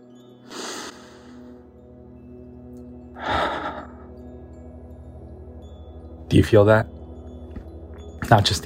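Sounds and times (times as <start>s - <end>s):
deep breath drawn in and let out: 0.4s - 1.7s, 3.2s - 4.2s
speech: 6.3s - 7.0s, 8.3s - 8.6s.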